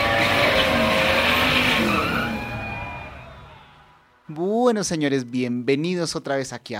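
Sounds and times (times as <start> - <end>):
race car engines roaring at full throttle: 0.0 - 4.0
speech: 4.7 - 6.7.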